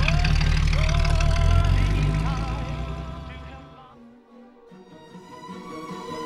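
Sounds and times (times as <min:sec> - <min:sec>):
car engine rumbling and stalling: 0:00.0 - 0:03.8.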